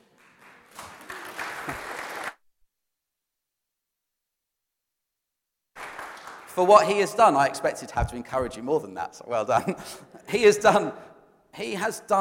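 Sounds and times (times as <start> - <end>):
crowd applauding: 0.0 - 2.4, 5.8 - 6.7
speech: 6.6 - 12.2.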